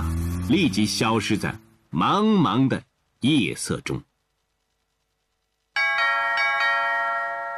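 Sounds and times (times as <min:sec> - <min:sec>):
speech: 0:00.5 - 0:04.1
doorbell ringing with bright electronic chimes: 0:05.8 - 0:07.5.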